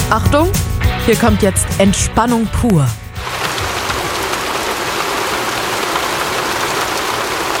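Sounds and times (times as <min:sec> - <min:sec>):
speech: 0:00.1 - 0:03.0
rain pattering against a window: 0:03.2 - 0:07.5.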